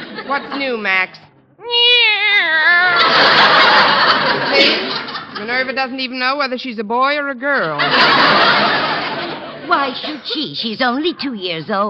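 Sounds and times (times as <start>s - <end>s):
laughter: 0.0s - 1.1s, 2.7s - 6.0s, 7.6s - 11.2s
speech: 0.3s - 8.8s, 9.7s - 11.8s
cat meowing: 1.6s - 3.1s.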